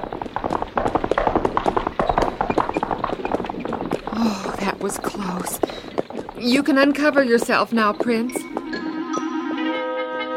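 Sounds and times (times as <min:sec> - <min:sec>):
several horses trotting with clattering hoofbeats: 0:00.0 - 0:09.3
speech: 0:04.8 - 0:08.4.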